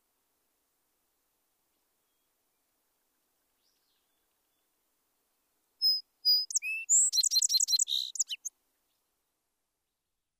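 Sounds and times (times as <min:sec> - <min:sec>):
song sparrow singing: 0:05.8 - 0:08.5.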